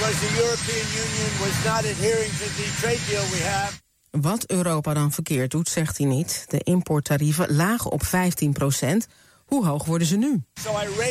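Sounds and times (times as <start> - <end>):
helicopter engine roaring: 0.0 - 3.8, 10.6 - 11.0
speech: 0.1 - 11.0.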